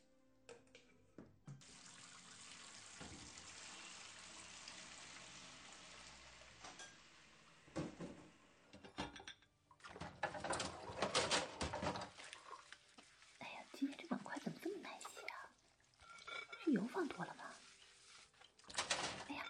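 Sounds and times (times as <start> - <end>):
tap running into a sink: 1.5 - 7.0, 7.7 - 9.1
dishes clattering: 6.6 - 7.0, 7.8 - 12.3, 16.0 - 16.6
dishes scrubbed and sloshed in splashing water: 8.9 - 19.4.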